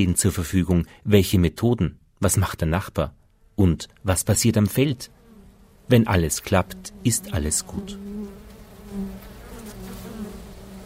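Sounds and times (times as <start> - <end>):
speech: 0.0 - 5.2, 5.9 - 9.2
honeybees buzzing at a hive entrance in spring: 4.0 - 10.8.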